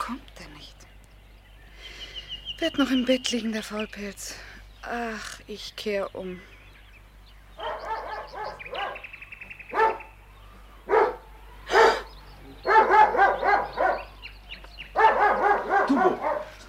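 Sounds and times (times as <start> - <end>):
low steady hum: 0.0 - 16.6
speech: 2.6 - 6.5
dog barking: 7.6 - 9.1, 9.7 - 10.1, 10.9 - 14.2, 14.9 - 16.6.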